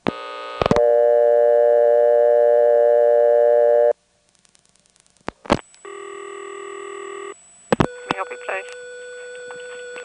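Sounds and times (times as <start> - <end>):
steady loud telephone line tone: 0.1 - 4.0, 5.9 - 10.0.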